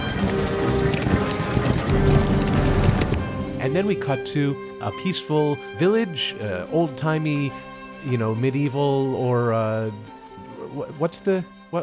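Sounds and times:
hooves of horses ridden by several men clip-clopping: 0.0s - 3.5s
continuous tonal musical backdrop: 0.0s - 11.8s
speech: 3.7s - 10.1s, 10.7s - 11.8s.

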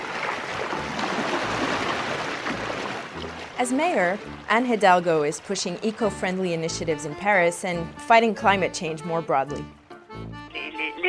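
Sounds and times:
rush of water and wind from electric hydrofoil water taxi gliding along a river: 0.0s - 7.9s
speech: 3.6s - 9.8s.

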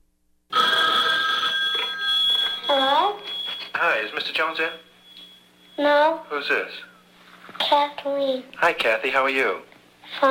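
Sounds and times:
telephone ringing with a loud steady electronic trill: 0.5s - 7.3s
speech: 4.0s - 4.9s, 5.8s - 6.9s, 7.5s - 10.2s.

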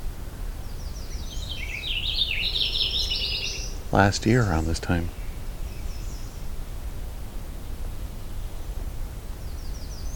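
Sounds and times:
steady hiss: 0.0s - 10.1s
purple finch singing on an overcast morning: 0.8s - 6.4s
speech: 3.9s - 5.2s.

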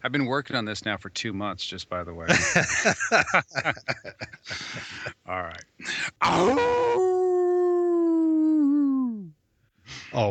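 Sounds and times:
speech: 0.0s - 7.1s, 9.9s - 10.2s
laughter: 2.3s - 5.2s
person imitating a hound dog's howl: 6.2s - 9.3s.

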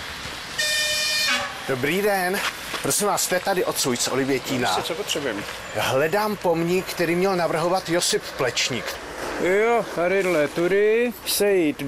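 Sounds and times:
train horn blast at a rural station: 0.6s - 1.7s
speech: 1.7s - 11.8s.

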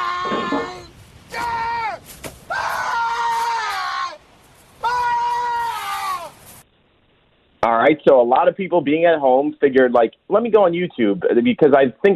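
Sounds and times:
man's loud drawn-out yell from a film castaway scene: 0.0s - 4.2s, 4.8s - 6.4s
speech: 7.9s - 12.1s.

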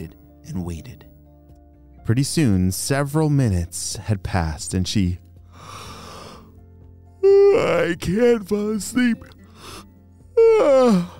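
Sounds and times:
speech: 0.0s - 1.1s, 2.1s - 5.8s, 7.6s - 9.9s, 10.5s - 11.1s
person yawning: 7.2s - 7.7s, 10.4s - 11.1s.

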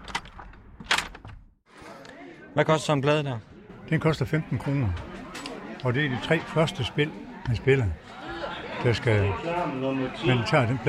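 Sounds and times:
door of a building opening and closing: 0.0s - 1.6s
busy murmur of people inside a building: 1.7s - 10.8s
speech: 2.6s - 5.1s, 5.8s - 8.2s, 8.8s - 10.8s.

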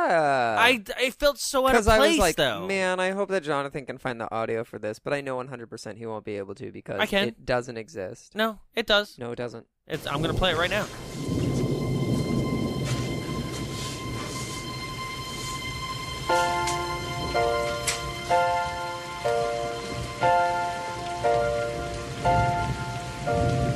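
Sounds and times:
speech: 0.1s - 11.1s
steady rain falling: 10.0s - 23.7s.

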